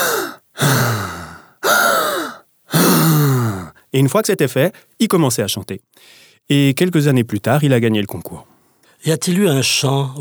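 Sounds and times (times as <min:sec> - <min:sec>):
voice imitating a little boy's deep forceful breathing before singing: 0:00.0 - 0:03.8
speech: 0:03.9 - 0:10.1.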